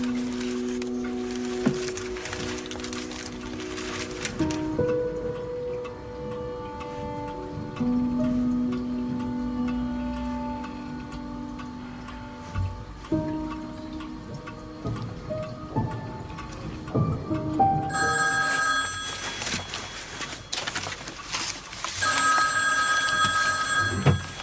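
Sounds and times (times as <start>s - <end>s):
steady ticking: 0.0s - 24.4s
telephone ringing: 17.9s - 21.2s, 21.8s - 24.4s.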